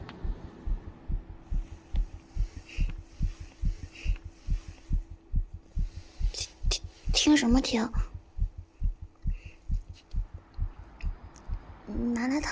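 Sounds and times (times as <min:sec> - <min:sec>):
faint hum: 0:00.0 - 0:12.5
fast heartbeat: 0:00.0 - 0:12.5
speech: 0:07.3 - 0:08.0.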